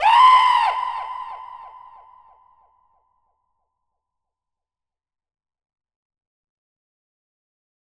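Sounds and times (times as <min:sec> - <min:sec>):
funky vocal scream: 0:00.0 - 0:02.1.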